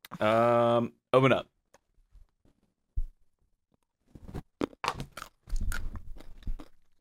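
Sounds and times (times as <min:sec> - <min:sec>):
speech: 0:00.2 - 0:01.5
crunching on raw carrots: 0:04.4 - 0:06.9.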